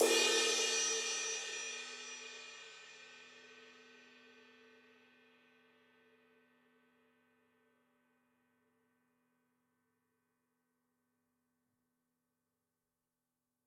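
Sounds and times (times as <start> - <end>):
ride cymbal of a Gretsch drum kit: 0.0 - 3.0.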